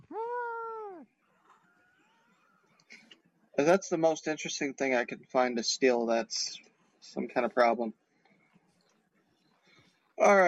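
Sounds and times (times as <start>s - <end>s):
cat meowing: 0.0s - 1.0s
speech: 3.6s - 8.0s, 10.2s - 10.4s.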